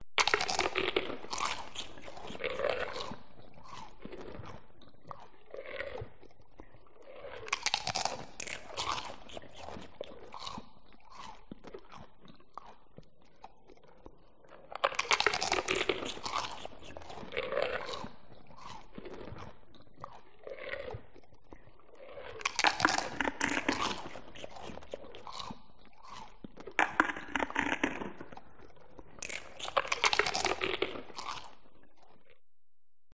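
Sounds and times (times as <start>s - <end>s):
monster eating: 0.2s - 4.6s, 7.4s - 11.9s, 14.8s - 19.5s, 22.4s - 27.8s, 29.2s - 31.6s.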